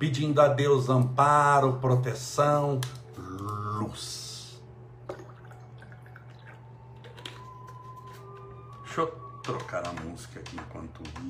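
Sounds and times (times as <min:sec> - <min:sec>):
speech: 0:00.0 - 0:04.2, 0:09.0 - 0:11.2
steady low electrical hum: 0:00.0 - 0:11.2
water poured into a small cup: 0:05.0 - 0:07.8.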